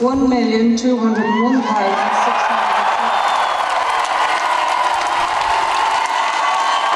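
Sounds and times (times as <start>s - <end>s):
large crowd cheering at referendum result announcement: 1.0s - 6.9s
high whoops and shouts: 1.1s - 6.9s
applause from a large crowd: 1.8s - 6.9s.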